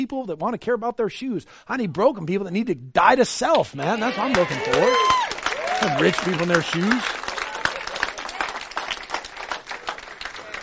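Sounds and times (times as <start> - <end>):
speech: 0.0 - 7.2
audience clapping steadily and densely: 3.6 - 10.6
scattered voices cheering and whooping: 3.8 - 8.8.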